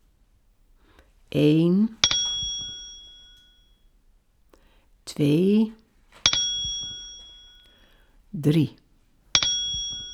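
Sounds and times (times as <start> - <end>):
speech: 1.3 - 2.0, 5.2 - 5.8, 8.4 - 8.8
bright page-turn bell chime: 2.0 - 3.8, 6.3 - 7.7, 9.4 - 10.1.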